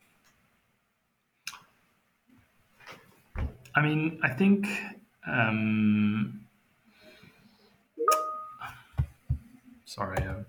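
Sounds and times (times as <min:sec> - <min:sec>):
soft low thumps: 0:03.4 - 0:03.7
speech: 0:03.8 - 0:06.4, 0:10.0 - 0:10.4
messaging app notification chime: 0:08.0 - 0:08.6.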